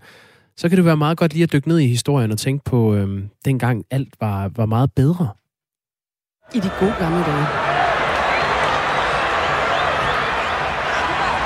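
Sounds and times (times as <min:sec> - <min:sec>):
speech: 0:00.6 - 0:05.4, 0:06.5 - 0:07.7
huge stadium crowd cheering a football goal: 0:06.5 - 0:11.4.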